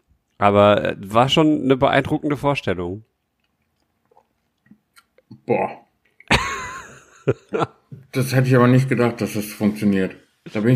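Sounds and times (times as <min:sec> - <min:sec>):
speech: 0:00.4 - 0:03.1, 0:05.5 - 0:05.8, 0:07.2 - 0:10.7
chewing a soft mouthful of doughnut: 0:03.2 - 0:05.3
laughter: 0:06.3 - 0:07.8.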